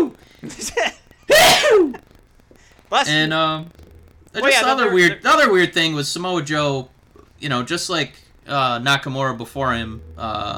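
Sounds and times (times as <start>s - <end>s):
sneeze: 1.3s - 2.0s
speech: 2.9s - 3.8s, 4.4s - 10.5s.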